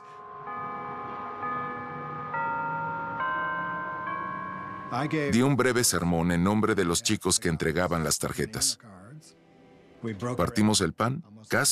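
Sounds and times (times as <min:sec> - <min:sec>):
church bells playing a hymn melody: 0:00.0 - 0:05.5
speech: 0:04.9 - 0:09.4, 0:10.0 - 0:11.7.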